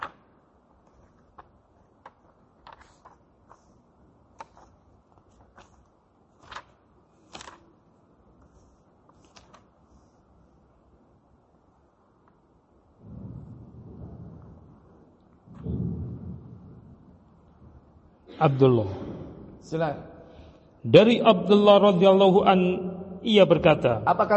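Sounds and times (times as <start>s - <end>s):
thunder rumbling: 13.0s - 17.3s
speech: 18.4s - 19.0s, 19.6s - 20.1s, 20.8s - 24.3s.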